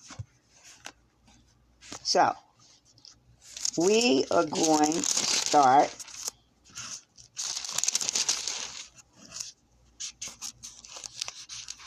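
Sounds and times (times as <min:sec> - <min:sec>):
speech: 0:02.1 - 0:02.4, 0:03.8 - 0:06.0
book pages being turned by hand: 0:02.9 - 0:11.8.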